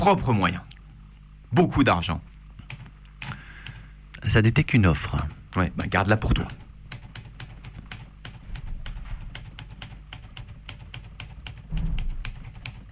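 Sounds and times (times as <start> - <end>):
speech: 0.0 - 0.7, 1.5 - 2.3, 4.2 - 6.6
crickets chirping: 0.0 - 12.8
dull thump: 11.7 - 12.3.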